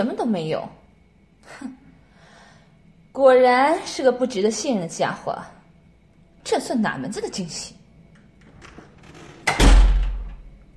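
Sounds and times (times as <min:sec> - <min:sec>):
speech: 0:00.0 - 0:00.8, 0:01.5 - 0:01.8, 0:03.2 - 0:05.6, 0:06.4 - 0:07.8
door swinging shut with a solid thud: 0:08.2 - 0:10.5.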